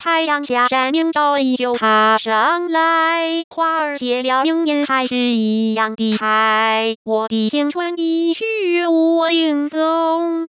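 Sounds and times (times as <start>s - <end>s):
smoothed synthetic female singing voice: 0.0s - 10.5s.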